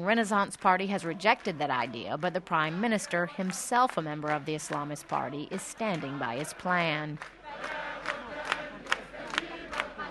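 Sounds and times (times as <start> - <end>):
speech: 0.0 - 7.8
large crowd singing national anthem at funeral march: 0.9 - 10.1.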